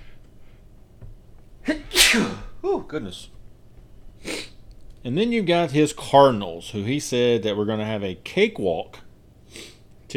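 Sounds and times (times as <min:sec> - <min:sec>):
person sneezing: 0:01.6 - 0:02.6
speech: 0:02.1 - 0:03.4, 0:05.0 - 0:10.1.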